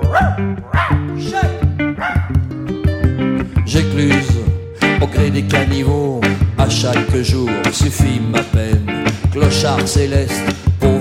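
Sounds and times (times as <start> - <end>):
dog barking: 0.0 - 2.4
instrumental music: 0.0 - 10.9
speech: 0.3 - 0.8, 7.2 - 8.6, 9.4 - 10.9.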